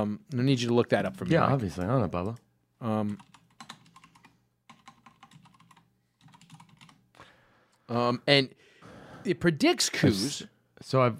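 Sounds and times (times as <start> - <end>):
speech: 0.0 - 3.4, 7.9 - 8.6, 9.2 - 11.1
typing on a computer keyboard: 3.0 - 7.0.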